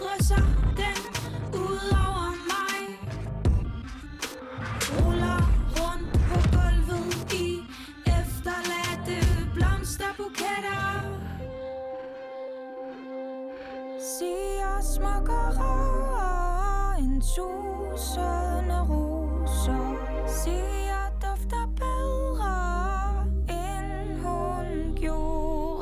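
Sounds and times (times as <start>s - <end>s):
song with driving beat and layered melodic instruments: 0.0s - 10.7s
sustained held chords: 11.7s - 25.8s.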